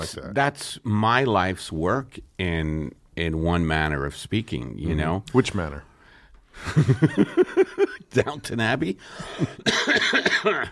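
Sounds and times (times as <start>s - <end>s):
speech: 0.0s - 5.9s, 6.6s - 10.7s
harsh rasping cough: 9.4s - 10.7s.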